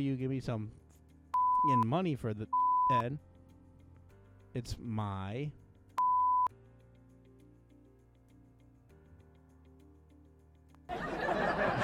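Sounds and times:
speech: 0:00.0 - 0:00.9, 0:01.6 - 0:03.3, 0:04.5 - 0:05.6
censor bleep tone over speech: 0:01.4 - 0:01.8, 0:02.6 - 0:03.0, 0:06.0 - 0:06.5
laughter: 0:10.9 - 0:11.8.

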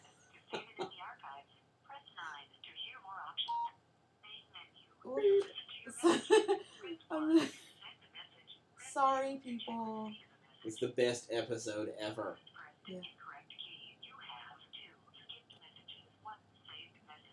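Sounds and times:
people laughing: 0:00.5 - 0:00.9, 0:06.0 - 0:07.6
electronic telephone keypad tones dialing a phone number: 0:03.4 - 0:03.7
speech: 0:05.0 - 0:07.6, 0:09.0 - 0:13.2.

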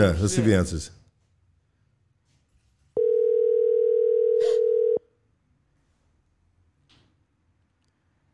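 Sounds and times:
speech: 0:00.0 - 0:01.0
ringback tone from an outgoing phone call: 0:03.0 - 0:05.0.

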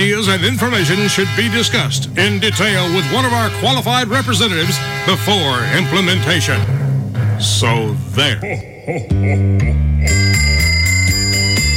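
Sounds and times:
speech: 0:00.0 - 0:06.8, 0:07.4 - 0:10.7
hand bell rung on the street for donations: 0:10.0 - 0:11.7.

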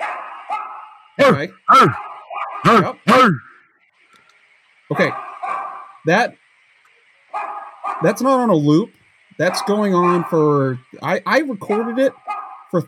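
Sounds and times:
low steady hum: 0:00.0 - 0:12.8
speech: 0:01.2 - 0:03.5, 0:04.9 - 0:05.3, 0:06.0 - 0:06.4, 0:08.0 - 0:12.8
man grunting while punching a punching bag: 0:02.7 - 0:03.5.

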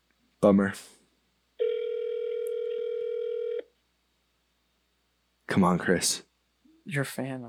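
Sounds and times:
speech: 0:00.4 - 0:01.0, 0:05.6 - 0:06.3, 0:06.9 - 0:07.4
ringback tone from a phone call ringing through to voicemail: 0:01.6 - 0:03.6.

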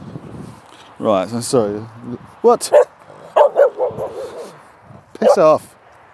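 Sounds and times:
speech: 0:01.0 - 0:03.0, 0:05.2 - 0:05.7
dog barking: 0:02.7 - 0:04.6, 0:05.2 - 0:05.5
dog whining: 0:02.7 - 0:04.6.

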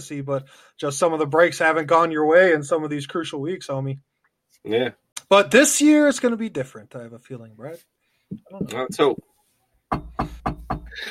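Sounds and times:
speech: 0:00.0 - 0:09.3, 0:09.9 - 0:11.1
knocking on a hard surface: 0:08.3 - 0:09.2, 0:09.9 - 0:11.0.

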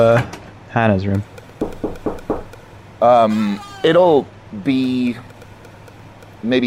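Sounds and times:
speech: 0:00.0 - 0:01.3, 0:03.0 - 0:05.3, 0:06.4 - 0:06.6
firm knocking on a room door: 0:01.5 - 0:02.6.

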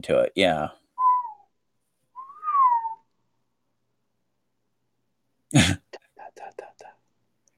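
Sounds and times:
speech: 0:00.0 - 0:00.8, 0:05.5 - 0:05.8
whistle: 0:01.0 - 0:01.5, 0:02.1 - 0:03.1.

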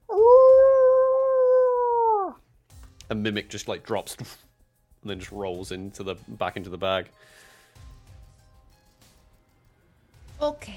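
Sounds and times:
animal howling from the woods: 0:00.0 - 0:02.4
speech: 0:03.1 - 0:07.5, 0:10.4 - 0:10.7.

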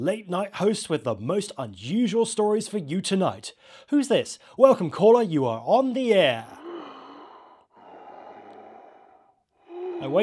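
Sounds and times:
speech: 0:00.0 - 0:06.6, 0:10.0 - 0:10.2
heavy wheezy breathing on a phone line: 0:06.4 - 0:10.2.

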